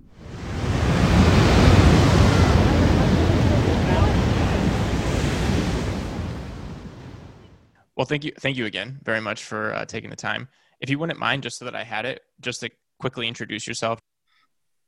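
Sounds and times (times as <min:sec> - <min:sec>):
ocean surf: 0:00.0 - 0:07.6
speech: 0:08.0 - 0:14.1.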